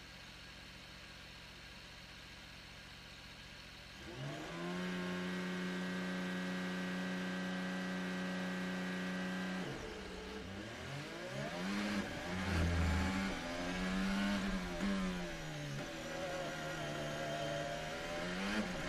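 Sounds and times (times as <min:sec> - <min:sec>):
racing car engine revving and changing gears: 0:04.0 - 0:18.8.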